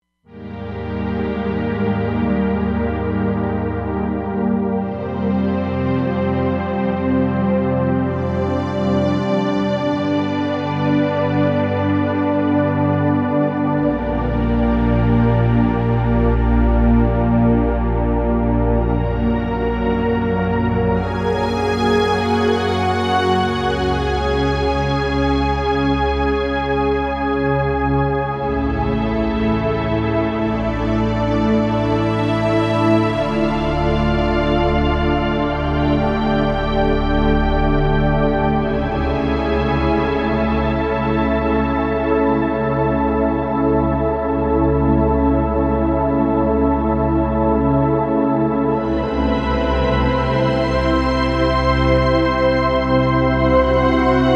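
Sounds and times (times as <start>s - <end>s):
synthesizer pad: 0.3s - 54.3s.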